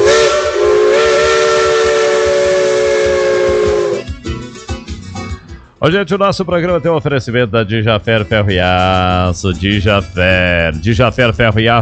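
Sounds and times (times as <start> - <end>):
steam train whistle: 0.0 - 4.2
speech: 5.8 - 11.7.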